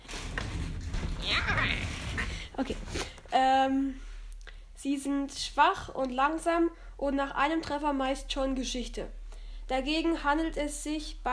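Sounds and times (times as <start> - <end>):
creaking chair being rolled around: 0.0 - 3.4
shuffling movement: 0.0 - 3.6
speech: 2.6 - 4.0, 4.8 - 11.3.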